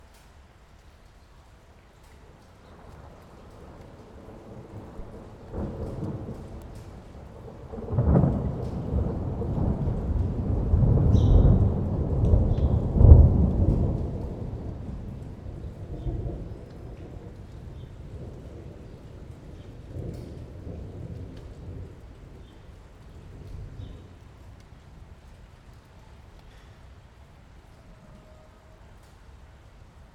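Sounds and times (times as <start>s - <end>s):
rain: 0.0s - 30.1s
thunder: 2.6s - 24.4s.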